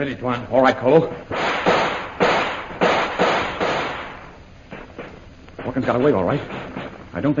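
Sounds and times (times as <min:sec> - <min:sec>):
speech: 0:00.0 - 0:01.5, 0:05.8 - 0:06.6, 0:07.2 - 0:07.3
gunshots in a firefight: 0:01.2 - 0:07.3.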